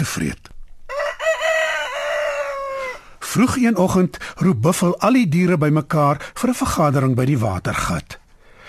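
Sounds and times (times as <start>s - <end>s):
speech: 0.0s - 0.5s, 3.3s - 8.2s
rooster crowing at dawn: 0.9s - 3.2s.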